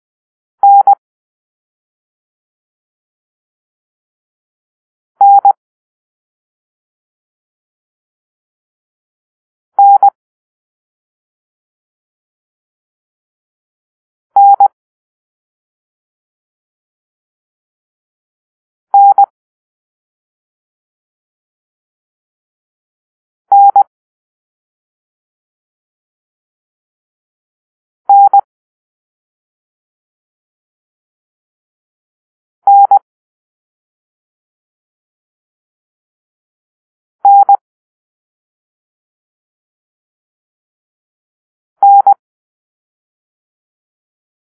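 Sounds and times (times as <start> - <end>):
morse code tones: 0.6 - 1.0, 9.8 - 10.1, 14.4 - 14.6, 23.5 - 23.8, 28.1 - 28.4, 32.7 - 33.0, 37.2 - 37.6, 41.8 - 42.2.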